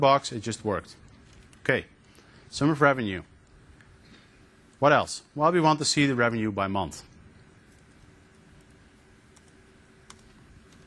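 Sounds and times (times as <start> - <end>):
speech: 0.0 - 3.3, 4.8 - 7.1
steady low hum: 0.0 - 10.8
computer keyboard typing: 7.7 - 10.8.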